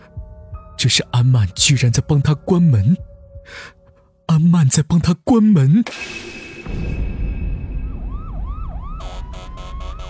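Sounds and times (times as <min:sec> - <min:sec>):
speech: 0:00.8 - 0:07.1
distant police car siren wailing: 0:07.4 - 0:10.0.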